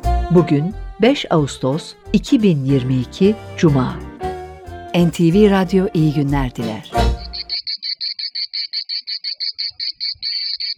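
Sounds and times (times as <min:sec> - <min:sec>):
speech: 0:00.3 - 0:04.1, 0:04.9 - 0:07.1
cicada chirping: 0:07.1 - 0:10.7.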